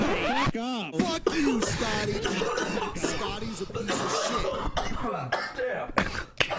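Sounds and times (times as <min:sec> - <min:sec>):
speech: 0:00.1 - 0:06.3
person coughing: 0:01.3 - 0:06.5.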